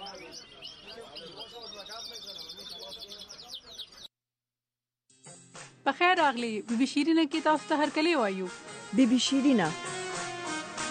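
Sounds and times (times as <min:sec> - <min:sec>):
pet canaries chirping: 0:00.0 - 0:04.1
speech: 0:05.9 - 0:09.9.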